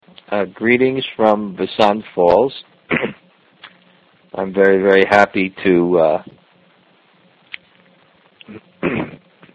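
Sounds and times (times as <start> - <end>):
speech: 0.3 - 3.0, 4.4 - 6.4
person coughing: 2.9 - 3.2, 8.5 - 9.2.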